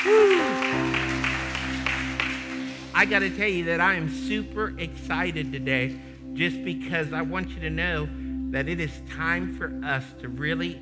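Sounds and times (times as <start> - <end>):
church congregation in Ohio clapping hands: 0.0 - 3.6
held musical chord: 0.3 - 10.7
speech: 3.0 - 10.7.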